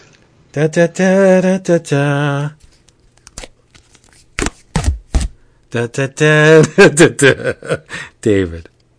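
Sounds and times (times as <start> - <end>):
speech: 0.5 - 2.6, 5.7 - 8.7
duct tape being torn off the roll: 3.2 - 5.4.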